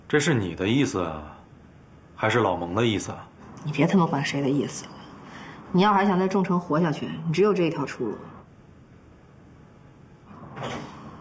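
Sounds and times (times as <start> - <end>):
quiet hum: 0.0 - 11.1
speech: 0.1 - 1.4, 2.2 - 5.0, 5.7 - 8.4
door sliding or swinging open: 10.3 - 11.1.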